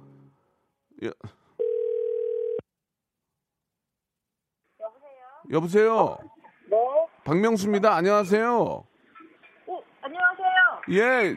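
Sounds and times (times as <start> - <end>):
speech: 1.0 - 1.4, 5.5 - 6.3, 7.3 - 8.9, 10.9 - 11.3
telephone ringback tone while placing a call: 1.6 - 2.6.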